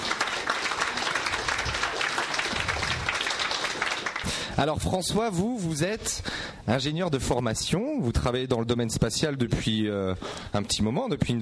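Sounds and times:
audience applause: 0.0s - 4.6s
speech: 4.6s - 11.3s.

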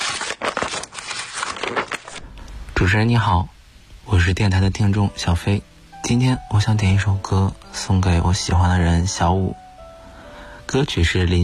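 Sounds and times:
paper crinkling and tearing as a letter is opened: 0.0s - 2.3s
speech: 2.8s - 9.6s, 10.7s - 11.4s.

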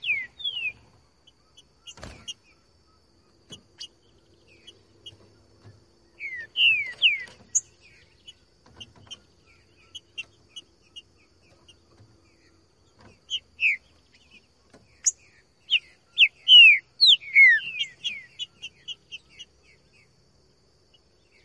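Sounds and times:
Green-winged Saltator singing in the bush: 0.0s - 0.8s, 6.2s - 7.4s, 15.7s - 18.5s.

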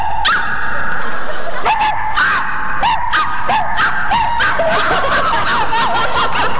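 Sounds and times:
laughter: 0.7s - 6.5s
man imitating dog barking: 1.7s - 4.9s.

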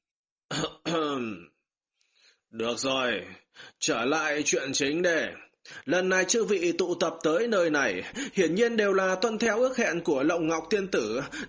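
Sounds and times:
elderly man giving a dry cough: 0.5s - 1.4s
speech: 2.5s - 11.4s.

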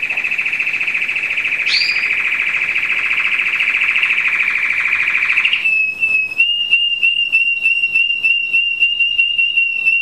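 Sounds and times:
American Singer canary song: 0.0s - 9.9s.

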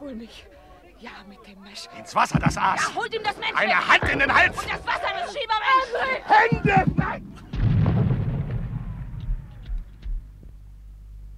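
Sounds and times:
speech: 0.1s - 7.5s
laughter: 1.8s - 7.6s
softer thuds: 2.3s - 5.2s, 6.4s - 10.6s
artillery cannon fire with a heavy rumbling boom: 6.8s - 10.4s.

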